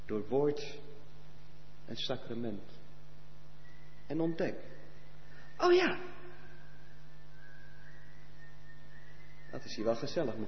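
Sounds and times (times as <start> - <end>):
constant low electrical hum: 0.0 - 10.4
speech: 0.1 - 0.9, 1.9 - 2.8, 4.1 - 4.8, 5.6 - 6.2, 9.5 - 10.4
person whistling a long steady note: 6.5 - 9.6.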